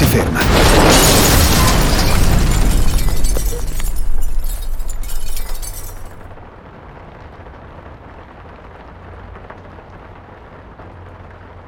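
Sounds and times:
car crash: 0:00.0 - 0:06.4
crunching metal: 0:00.0 - 0:06.4
glass shattering and tinkling: 0:00.0 - 0:06.4
speech: 0:00.2 - 0:00.4.

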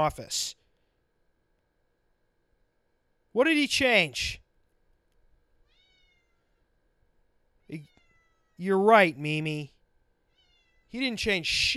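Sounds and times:
speech: 0:00.0 - 0:00.6, 0:03.4 - 0:04.4, 0:07.7 - 0:07.9, 0:08.6 - 0:09.7, 0:10.9 - 0:11.7
low steady hum: 0:00.0 - 0:11.7
cat meowing: 0:05.6 - 0:06.6, 0:07.7 - 0:08.6, 0:10.3 - 0:11.0.

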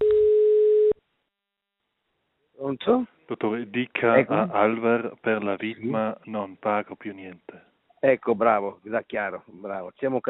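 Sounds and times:
telephone ringing tone of an outgoing phone call: 0:00.0 - 0:01.0
speech: 0:02.7 - 0:10.2.

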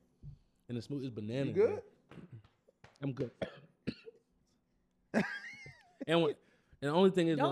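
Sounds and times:
speech: 0:00.7 - 0:02.0, 0:03.0 - 0:03.6, 0:06.1 - 0:07.5
person coughing with a raspy rattle: 0:03.4 - 0:04.2.

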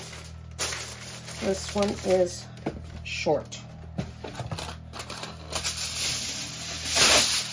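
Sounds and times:
sheet of aluminum foil pulled and torn from a roll: 0:00.0 - 0:02.3, 0:05.0 - 0:07.5
speech: 0:01.4 - 0:04.1.

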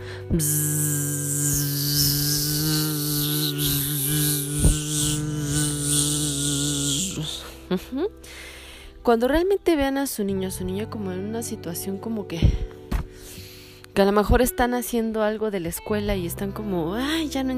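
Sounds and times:
speech: 0:00.0 - 0:00.8, 0:07.7 - 0:12.8, 0:14.0 - 0:17.5
person humming a droning buzz imitating a bee in a bee-breathing exercise: 0:00.0 - 0:08.2
brief breathy sounds: 0:00.0 - 0:09.0, 0:12.4 - 0:14.0.

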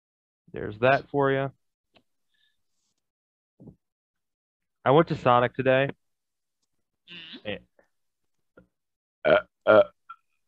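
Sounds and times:
speech: 0:00.5 - 0:01.6, 0:04.8 - 0:06.0, 0:07.1 - 0:07.6, 0:09.2 - 0:10.4
feeble burp: 0:07.1 - 0:07.5, 0:09.2 - 0:10.4.

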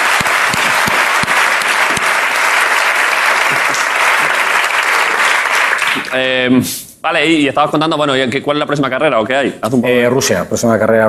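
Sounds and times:
audience applause: 0:00.0 - 0:06.2
speech: 0:06.1 - 0:11.0.

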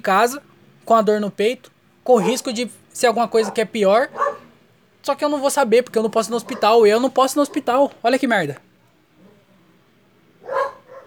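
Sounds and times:
speech: 0:00.0 - 0:04.2, 0:05.0 - 0:08.6
faint noise: 0:00.0 - 0:11.0
dog barking: 0:02.1 - 0:02.6, 0:03.3 - 0:04.6, 0:06.2 - 0:07.8, 0:10.4 - 0:11.0.

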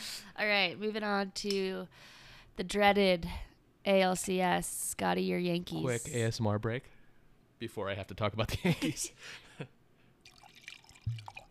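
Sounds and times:
speech: 0:00.4 - 0:06.9, 0:07.6 - 0:09.8
wine being poured into a glass: 0:10.2 - 0:11.4.

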